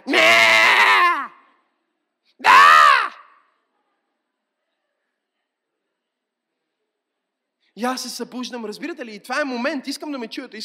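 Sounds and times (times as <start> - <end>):
voice imitating a baby crying: 0.0 - 1.4
speech: 7.8 - 10.6.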